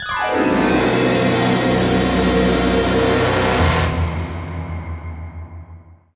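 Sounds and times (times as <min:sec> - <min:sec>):
goal fanfare: 0:00.3 - 0:05.0.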